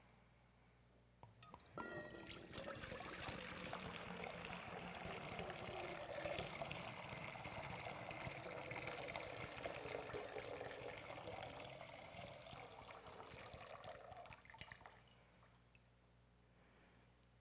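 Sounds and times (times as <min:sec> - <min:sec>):
water pouring from a container: 0:01.8 - 0:15.5.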